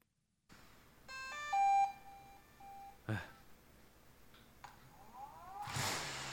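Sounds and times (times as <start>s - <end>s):
speech: 3.1s - 3.4s
hovering drone motors whining: 4.9s - 6.3s.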